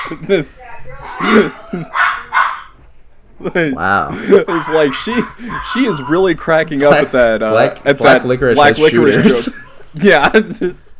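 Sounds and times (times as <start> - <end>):
small dog barking: 0.0 - 2.9, 4.0 - 7.2
laughter: 0.0 - 10.9
speech: 0.1 - 2.1, 3.4 - 10.8.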